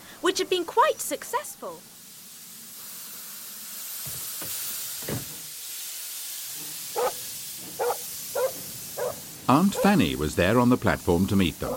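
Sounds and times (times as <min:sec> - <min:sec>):
steady hiss: 0:00.0 - 0:11.7
speech: 0:00.3 - 0:01.9, 0:09.5 - 0:11.7
dog barking excitedly: 0:06.9 - 0:10.0, 0:11.6 - 0:11.7.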